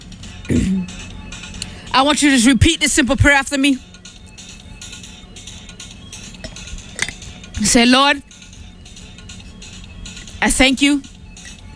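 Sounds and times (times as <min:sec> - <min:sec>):
single short rough throaty cough: 0:00.5 - 0:01.0
speech: 0:00.5 - 0:01.1, 0:02.0 - 0:03.9, 0:07.6 - 0:08.3, 0:10.4 - 0:11.1.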